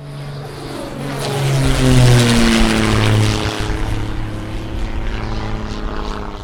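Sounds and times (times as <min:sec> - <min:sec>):
airplane: 0:00.0 - 0:06.4.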